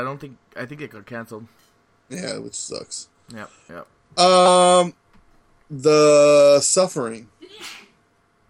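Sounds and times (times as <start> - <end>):
speech: 0.0 - 5.0, 5.7 - 7.8
sneeze: 7.5 - 8.0.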